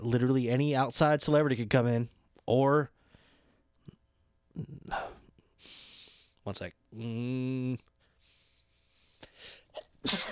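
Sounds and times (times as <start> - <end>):
speech: 0.0 - 3.0, 4.6 - 5.8, 6.4 - 7.9, 9.4 - 10.3
sharp hitching inhales: 5.6 - 6.4, 8.0 - 9.7
person sneezing loudly: 9.7 - 10.3.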